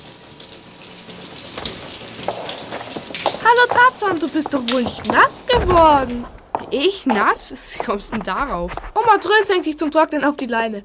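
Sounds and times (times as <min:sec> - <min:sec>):
heavy rain pouring: 0:00.7 - 0:09.2
speech: 0:03.5 - 0:10.8.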